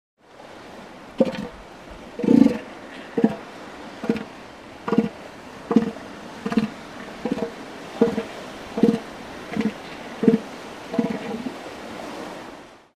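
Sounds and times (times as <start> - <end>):
elephant seal growling: 1.2 - 1.6, 2.2 - 11.6.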